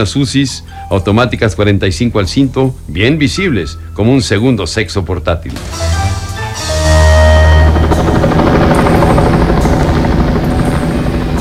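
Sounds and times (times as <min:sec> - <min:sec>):
speech: 0:00.0 - 0:06.1
helicopter flying overhead: 0:06.2 - 0:11.3.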